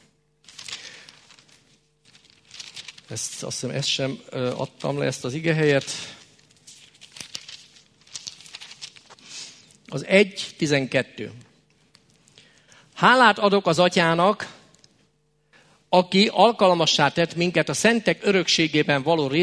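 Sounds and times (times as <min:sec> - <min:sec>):
thin Bible pages being turned: 0:00.4 - 0:09.9
speech: 0:03.1 - 0:06.2, 0:09.9 - 0:11.5, 0:13.0 - 0:14.5, 0:15.9 - 0:19.4.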